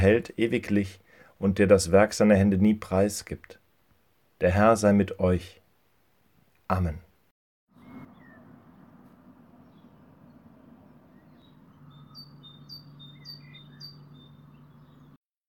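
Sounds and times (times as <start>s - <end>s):
speech: 0.0s - 3.6s, 4.4s - 5.6s, 6.7s - 7.0s
birds singing in a morning chorus: 7.7s - 15.2s.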